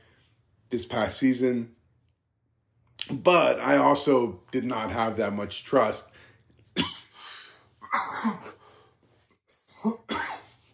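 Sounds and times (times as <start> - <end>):
speech: 0.7 - 1.8, 3.1 - 6.1
breaths: 6.1 - 7.8, 8.5 - 9.3
harsh coughing fit: 6.8 - 8.8, 9.5 - 10.6.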